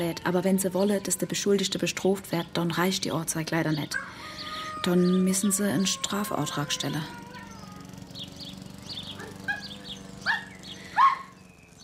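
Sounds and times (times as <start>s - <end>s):
speech: 0.0s - 7.2s
steady low hum: 0.0s - 11.8s
dog barking short high-pitched barks: 9.2s - 11.3s.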